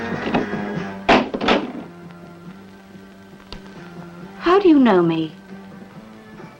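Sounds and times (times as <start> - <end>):
door pushed shut: 0.2 - 2.0
speech: 4.6 - 5.4.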